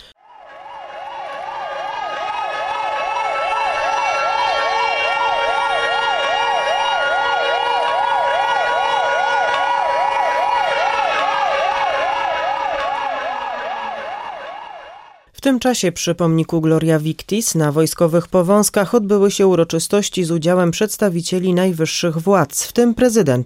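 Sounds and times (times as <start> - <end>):
air raid siren warbling: 0.0 - 15.3
speech: 15.5 - 23.4.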